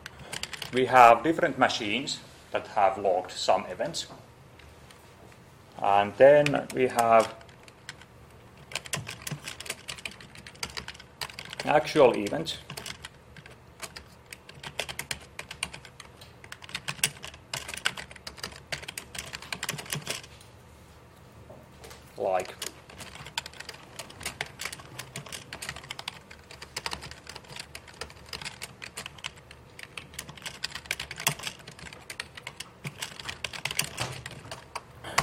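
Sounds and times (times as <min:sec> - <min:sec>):
typing on a computer keyboard during a lecture: 0:00.0 - 0:00.8, 0:06.3 - 0:20.3, 0:22.4 - 0:35.2
speech: 0:00.7 - 0:04.3, 0:05.8 - 0:07.4, 0:11.6 - 0:12.7.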